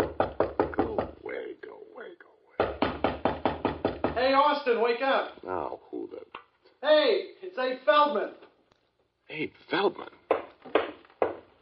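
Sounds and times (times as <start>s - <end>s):
loud knocking on a door: 0.0s - 1.2s, 2.6s - 4.4s, 10.3s - 11.6s
speech: 4.2s - 5.8s, 6.8s - 8.4s, 9.3s - 10.1s.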